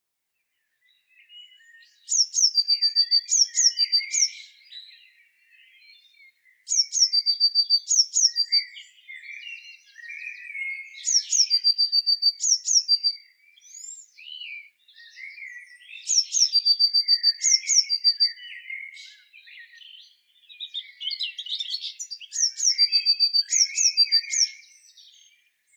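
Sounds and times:
soft lower twittering: 0.9s - 25.7s
Eurasian blue tit Cyanistes caeruleus calling: 2.0s - 5.1s, 6.7s - 10.2s, 10.8s - 25.4s.

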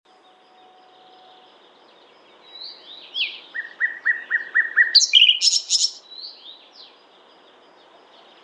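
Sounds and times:
Common nightingale Luscinia megarhynchos singing: 0.1s - 8.4s.

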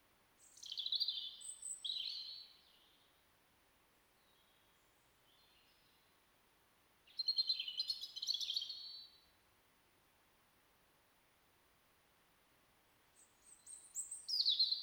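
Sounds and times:
Erithacus rubecula European robin singing: 0.4s - 3.1s, 7.1s - 9.2s, 13.2s - 14.8s.

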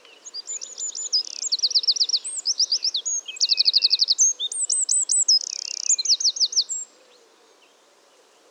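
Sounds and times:
Eurasian wren Troglodytes troglodytes singing high-pitched trills: 0.2s - 6.9s.

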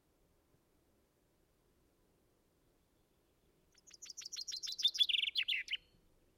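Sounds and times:
common chaffinch Fringilla coelebs singing: 3.7s - 5.9s.

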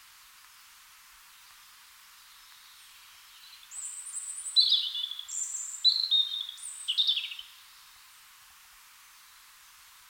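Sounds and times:
European robin Erithacus rubecula singing: 2.5s - 7.6s.

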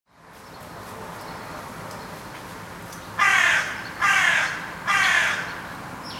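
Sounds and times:
Carrion crow Corvus corone cawing hoarse and grating: 3.2s - 5.6s.

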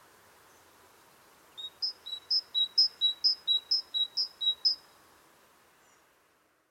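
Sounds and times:
faint background hiss: 0.0s - 6.7s
great tit Parus major singing: 1.6s - 4.8s.

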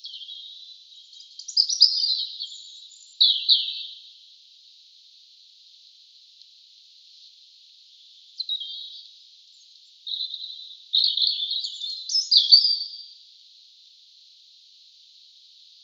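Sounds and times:
European robin singing: 0.0s - 4.0s, 8.4s - 13.2s.

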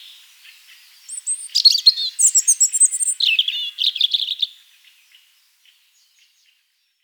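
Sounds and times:
European robin Erithacus rubecula song: 0.0s - 4.4s.

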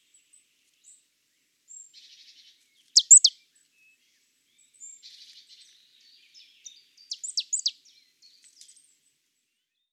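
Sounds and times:
marsh tit Poecile palustris high downslurred call notes: 3.0s - 3.3s.

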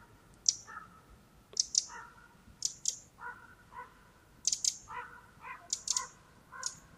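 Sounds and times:
Eurasian wren Troglodytes troglodytes calling: 0.0s - 3.6s, 4.4s - 6.9s.

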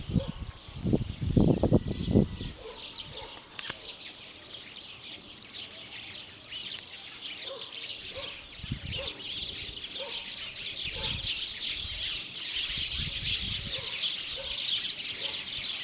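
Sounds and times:
house sparrows Passer domesticus chirping: 0.0s - 15.8s.

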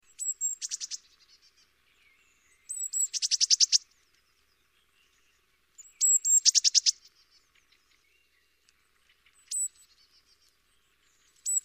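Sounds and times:
Eurasian blue tit Cyanistes caeruleus calls: 0.2s - 1.1s, 2.7s - 3.9s, 5.8s - 7.1s, 9.5s - 9.7s, 11.4s - 11.6s.

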